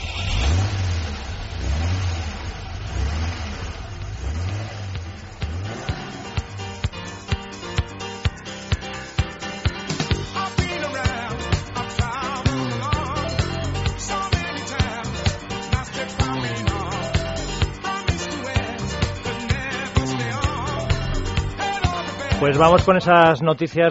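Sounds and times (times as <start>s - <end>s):
car engine starting and revving: 0.0s - 7.6s, 12.3s - 22.8s
car engine idling with rhythmic ticking: 0.0s - 23.0s
speech: 22.5s - 23.8s.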